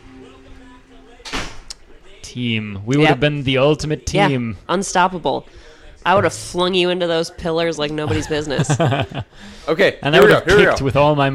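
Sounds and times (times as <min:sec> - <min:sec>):
door click: 0:01.2 - 0:01.8
speech: 0:02.3 - 0:11.3
laughter: 0:08.0 - 0:09.4.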